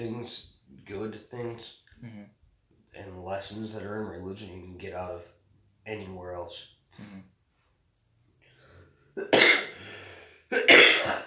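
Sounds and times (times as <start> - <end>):
speech: 0.0 - 2.4, 3.0 - 7.3, 9.2 - 9.7
person coughing harshly: 9.2 - 11.2
faint intake of breath: 9.8 - 10.5.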